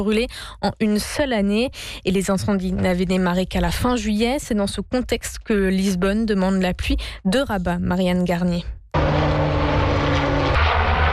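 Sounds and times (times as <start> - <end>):
speech: 0.0 - 9.3
Canadair amphibious firefighting aircraft propeller-engine drone: 9.0 - 11.1.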